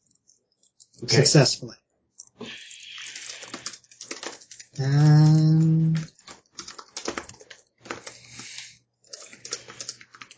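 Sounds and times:
speech: 1.0 - 1.8
furious typing on a computer keyboard: 3.0 - 10.3.

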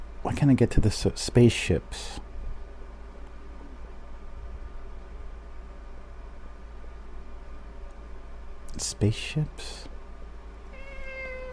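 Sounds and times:
low hum: 0.0 - 11.5
speech: 0.3 - 2.2, 8.8 - 9.9
cat meowing: 10.7 - 11.5.

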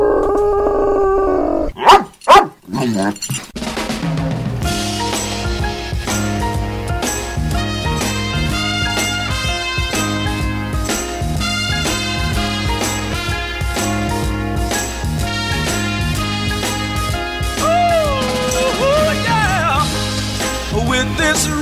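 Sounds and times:
dog howling yelps: 0.0 - 2.6
speech: 2.8 - 3.5
upbeat music: 3.6 - 21.5.

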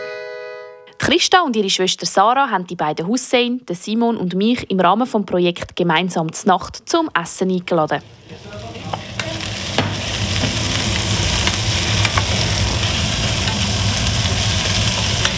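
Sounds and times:
speech: 1.0 - 9.1
asparagus risotto sizzling in a pan: 7.9 - 15.3.

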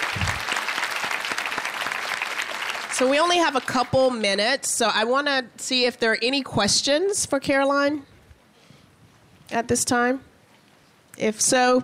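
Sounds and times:
audience applause after a conference talk: 0.0 - 3.8
speech: 3.0 - 8.1, 9.5 - 10.3, 11.2 - 11.8.

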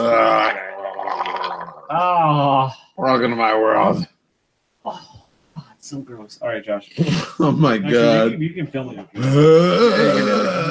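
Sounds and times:
long loud gurgling burp: 0.0 - 2.5, 9.2 - 10.6
speech: 3.2 - 4.1, 5.9 - 10.6.

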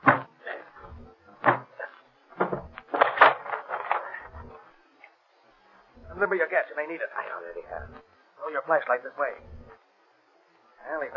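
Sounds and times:
wooden door being broken open with thumps and cracks: 0.0 - 0.3, 2.4 - 4.0
speech: 6.3 - 9.5.

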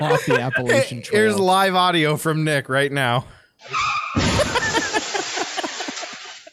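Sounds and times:
laughter: 0.0 - 2.4, 4.2 - 6.5
speech: 0.0 - 4.7
car tires screeching: 3.6 - 4.4
loud car crash: 4.0 - 5.0.

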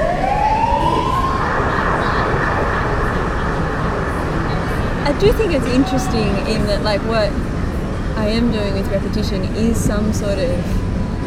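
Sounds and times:
siren rising in pitch: 0.0 - 6.8
passing traffic rumbling: 0.0 - 11.2
speech: 5.2 - 7.6, 8.2 - 10.8.

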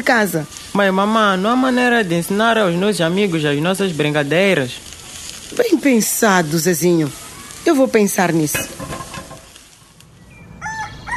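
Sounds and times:
speech: 0.0 - 4.9, 5.5 - 9.0
quiet outdoor ambience: 0.0 - 11.1
rooster crowing: 10.4 - 11.1.

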